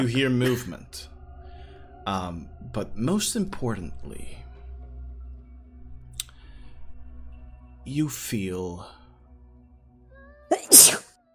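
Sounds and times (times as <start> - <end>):
speech: 0.0 - 1.1, 2.1 - 4.4, 7.9 - 9.0
human sneeze: 10.5 - 11.0.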